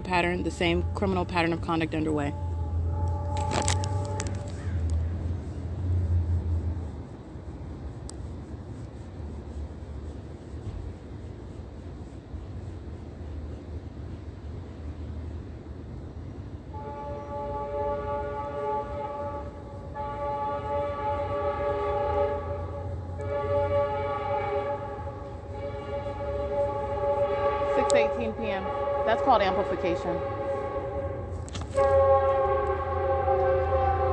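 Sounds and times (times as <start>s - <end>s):
train horn blaring: 0.0s - 4.6s, 16.7s - 34.1s
passing train rumble: 0.0s - 34.1s
steady low mechanical noise: 0.0s - 34.1s
speech: 0.1s - 2.5s.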